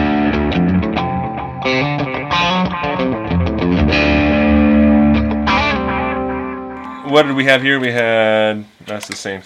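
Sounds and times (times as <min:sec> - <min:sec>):
electric guitar through overdrive pedal and tape echo: 0:00.0 - 0:07.4
speech: 0:07.1 - 0:09.4.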